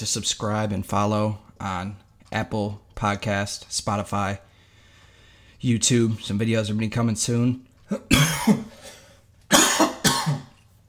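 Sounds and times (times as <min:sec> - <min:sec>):
speech: 0:00.0 - 0:04.5, 0:05.6 - 0:08.7
person coughing: 0:07.9 - 0:10.6.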